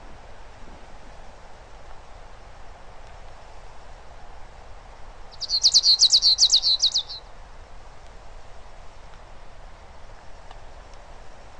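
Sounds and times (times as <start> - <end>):
faint background hiss: 0.0 - 11.5
bird chirping: 5.3 - 7.3.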